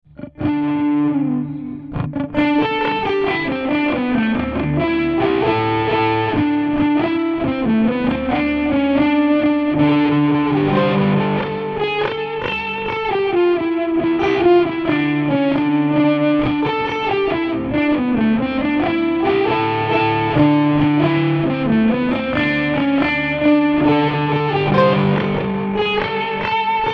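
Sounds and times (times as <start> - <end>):
gothic guitar music: 0.0 - 26.9.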